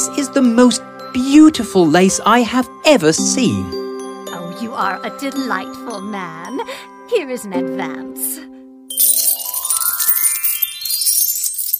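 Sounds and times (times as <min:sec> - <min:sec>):
speech: 0:00.4 - 0:03.8, 0:04.6 - 0:08.5
coins clinking in a tailor's purse: 0:08.2 - 0:11.7
rising tinkling sweep: 0:08.9 - 0:11.7.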